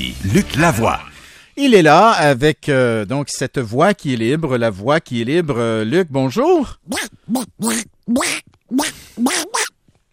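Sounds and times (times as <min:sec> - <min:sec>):
speech: 0:00.0 - 0:09.6
duck call quacking for duck hunting: 0:06.9 - 0:09.7.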